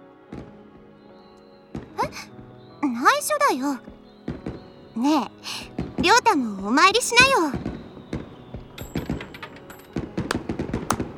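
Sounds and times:
fireworks bursting: 1.7s - 2.3s, 3.9s - 4.9s, 5.6s - 11.1s
speech: 2.1s - 3.9s, 5.0s - 7.7s.

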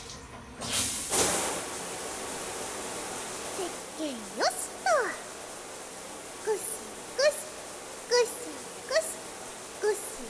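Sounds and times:
water poured to rinse someone's back in a bath: 0.7s - 10.2s.

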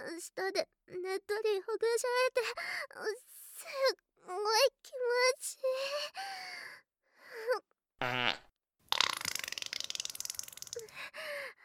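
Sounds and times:
speech: 0.3s - 6.7s, 7.3s - 8.4s
fart: 8.0s - 10.8s.

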